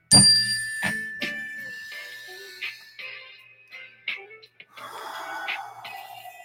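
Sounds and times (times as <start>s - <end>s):
small mindfulness bell ringing: 0.0s - 4.1s
person breathing in and out: 1.9s - 3.0s, 4.7s - 6.4s.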